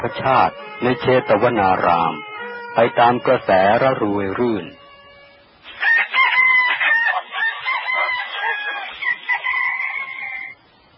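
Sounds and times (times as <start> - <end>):
speech: 0.0 - 4.8
jungle fowl crowing: 5.7 - 10.6.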